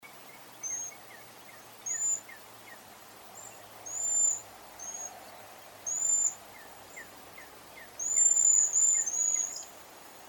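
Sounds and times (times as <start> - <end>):
Cedar Waxwing Bombycilla cedrorum calling: 0.1 - 2.8, 3.4 - 9.8.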